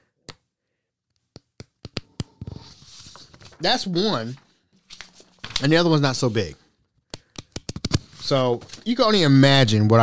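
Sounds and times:
big stack of printed paper being riffled and handled: 2.5s - 6.3s, 8.0s - 9.1s
speech: 3.6s - 4.4s, 5.6s - 6.6s, 8.3s - 10.0s.

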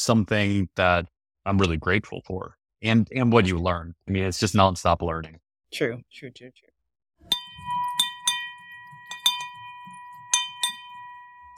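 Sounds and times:
speech: 0.0s - 7.4s
small celebration bell ringing: 7.3s - 11.5s.

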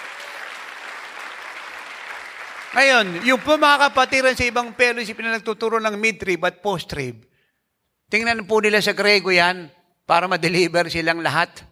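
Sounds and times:
audience applause: 0.0s - 5.2s
speech: 2.7s - 7.3s, 8.1s - 11.7s.

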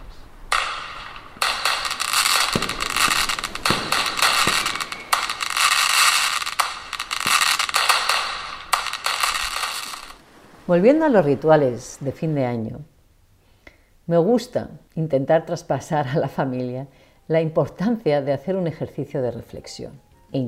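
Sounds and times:
firecrackers and fireworks crackling at a night-time fireworks competition on a beach: 0.0s - 10.7s
speech: 10.7s - 12.9s, 14.1s - 20.4s.

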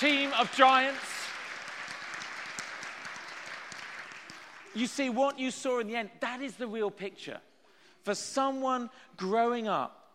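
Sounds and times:
speech: 0.0s - 1.1s, 4.7s - 10.0s
audience applause for a team after a pulling contest: 0.0s - 5.2s.

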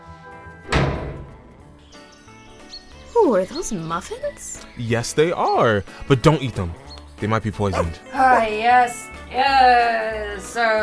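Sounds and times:
back door swinging shut with a solid thud: 0.6s - 1.8s
speech: 3.2s - 10.8s.

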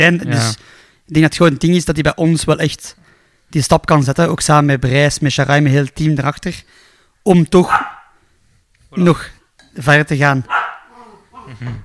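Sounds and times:
speech: 0.0s - 8.0s, 8.9s - 10.6s, 11.5s - 11.8s
dog giving short playful barks and yips: 7.7s - 8.1s, 10.5s - 11.5s.

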